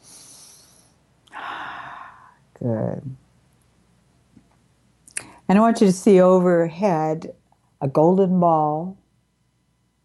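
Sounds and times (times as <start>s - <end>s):
deep breathing during a guided relaxation exercise: 0.0s - 2.4s
speech: 2.6s - 3.2s, 5.5s - 9.0s.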